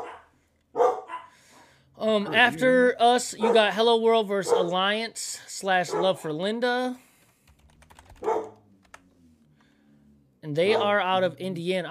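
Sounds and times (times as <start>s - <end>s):
dog barking: 0.0s - 1.6s, 3.3s - 3.8s, 4.4s - 4.8s, 5.9s - 6.2s, 8.2s - 8.6s, 10.7s - 11.0s
speech: 2.1s - 7.0s, 10.5s - 11.8s.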